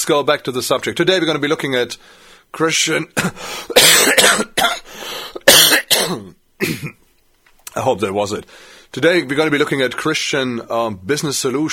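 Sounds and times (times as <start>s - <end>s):
speech: 0.0s - 4.7s, 6.0s - 7.0s, 7.7s - 11.7s
person coughing harshly: 3.2s - 7.0s
throat clearing rasp: 5.5s - 7.0s.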